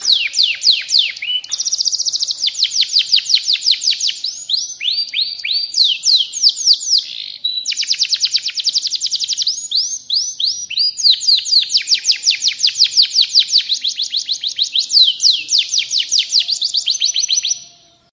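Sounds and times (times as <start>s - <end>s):
F1 Atlantic canary song: 0.0s - 18.1s.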